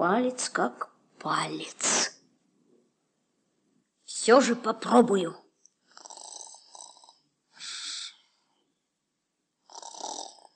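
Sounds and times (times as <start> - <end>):
speech: 0.0 - 2.1, 4.2 - 5.4
boy snoring while asleep: 5.9 - 8.2, 9.6 - 10.5.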